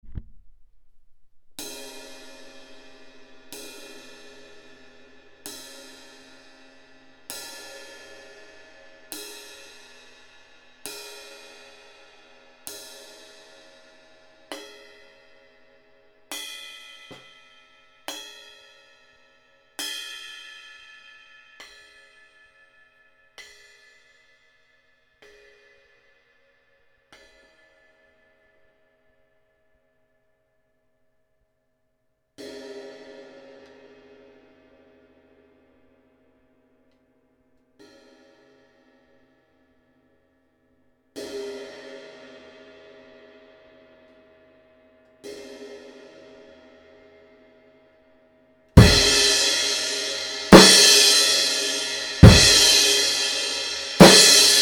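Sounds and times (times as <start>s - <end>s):
classic medium crash cymbal: 48.8s - 54.6s.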